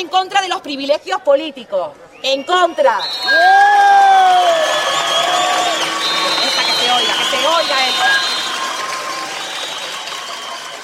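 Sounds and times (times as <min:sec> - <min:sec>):
speech: 0:00.0 - 0:05.3
protest crowd cheering and whooping at a demonstration: 0:03.0 - 0:10.8
high sustained shout: 0:03.2 - 0:10.8.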